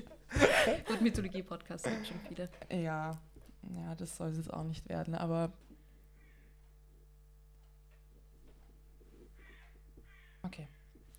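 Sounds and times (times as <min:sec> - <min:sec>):
laughter: 0:00.0 - 0:02.9
steady low electrical hum: 0:00.0 - 0:11.1
speech: 0:00.6 - 0:05.7, 0:10.5 - 0:10.8
crows cawing outdoors: 0:06.1 - 0:06.8, 0:09.2 - 0:11.0.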